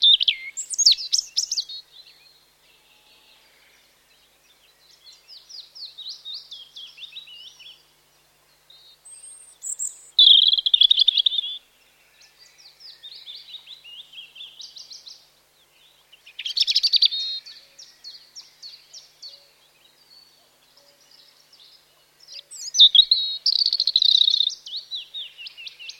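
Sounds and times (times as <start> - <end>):
European robin singing bright high twittering spring song: 0.0 - 2.5, 3.6 - 25.9.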